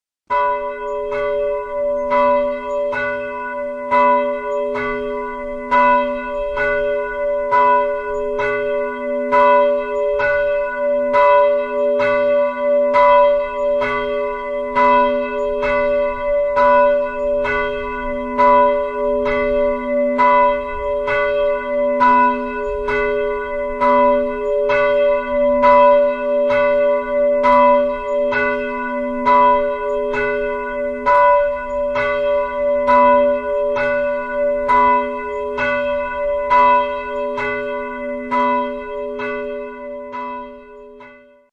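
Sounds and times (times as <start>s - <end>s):
bells ringing as signals: 0.3s - 41.5s.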